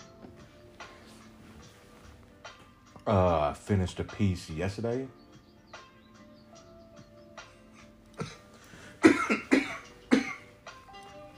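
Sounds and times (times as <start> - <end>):
speech: 3.1 - 5.2
smoker's harsh raspy coughing: 8.2 - 10.5.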